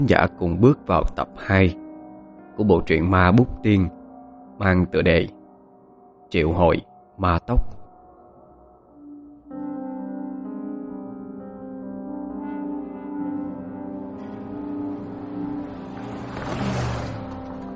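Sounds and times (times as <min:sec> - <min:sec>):
speech: 0:00.0 - 0:01.8, 0:02.6 - 0:04.0, 0:04.6 - 0:05.4, 0:06.3 - 0:07.8
car engine starting and driving away: 0:14.4 - 0:17.7.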